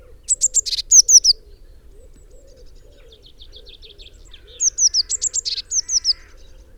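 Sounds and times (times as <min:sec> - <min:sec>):
Eurasian blue tit Cyanistes caeruleus calls with high thin notes and descending chips: 0:00.2 - 0:01.4, 0:02.6 - 0:06.7.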